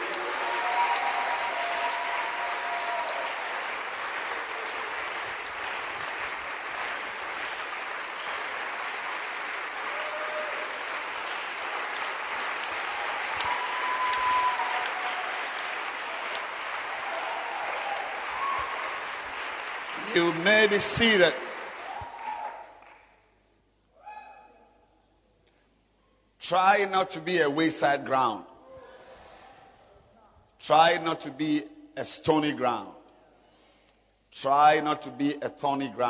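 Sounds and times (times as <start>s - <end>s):
audience clapping hands in a large room: 0.0s - 23.2s
speech: 20.2s - 21.4s, 26.5s - 28.5s, 30.7s - 33.0s, 34.3s - 36.0s.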